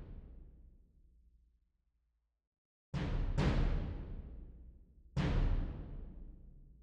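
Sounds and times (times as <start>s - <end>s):
bass drum: 3.0s - 4.3s, 5.2s - 6.2s.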